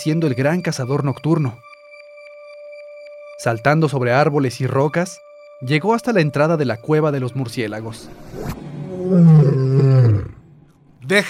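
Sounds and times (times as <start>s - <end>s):
speech: 0.0s - 1.7s, 3.4s - 10.4s, 11.1s - 11.2s
fierce deep big cat roar: 8.9s - 10.4s.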